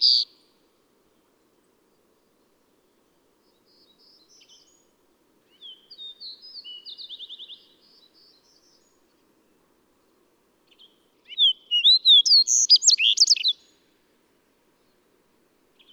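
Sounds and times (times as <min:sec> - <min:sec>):
bird song: 0:00.0 - 0:00.4, 0:03.4 - 0:09.2, 0:10.7 - 0:13.9.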